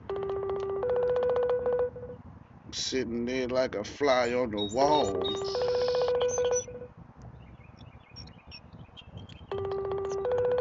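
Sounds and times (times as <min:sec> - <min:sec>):
phone line ringback tone on a call: 0:00.0 - 0:02.2, 0:04.2 - 0:06.9, 0:09.5 - 0:10.5
speech: 0:02.7 - 0:05.8.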